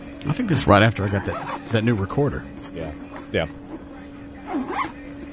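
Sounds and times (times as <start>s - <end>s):
speech: 0.4s - 3.6s
zipper pulls rasping open: 1.2s - 1.7s, 4.4s - 5.0s.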